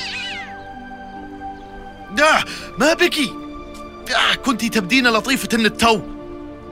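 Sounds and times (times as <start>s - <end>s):
black cat letting out an odd strained meow: 0.0s - 0.6s
speech: 2.1s - 3.4s, 4.1s - 6.1s.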